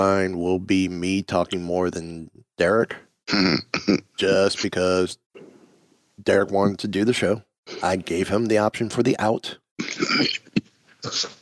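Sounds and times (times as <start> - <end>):
speech: 0.0 - 5.5, 6.2 - 10.4, 11.0 - 11.4
person coughing: 3.3 - 4.0, 9.8 - 11.4.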